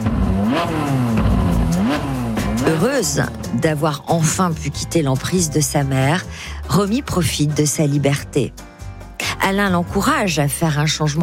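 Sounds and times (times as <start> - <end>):
Ferrari sports car engine revving as it accelerates: 0.0 - 3.6
speech: 0.6 - 1.0, 2.7 - 8.7, 9.4 - 11.2.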